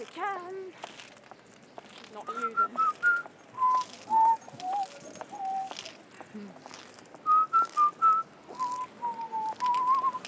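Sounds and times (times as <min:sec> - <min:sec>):
speech: 0:02.2 - 0:03.3
person whistling a tune: 0:02.4 - 0:05.8, 0:07.3 - 0:10.2.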